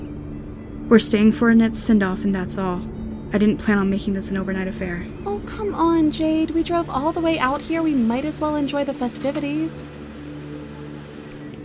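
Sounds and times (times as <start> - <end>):
speech: 0.9 - 10.0
car engine idling while parked at a farmhouse: 4.3 - 11.6.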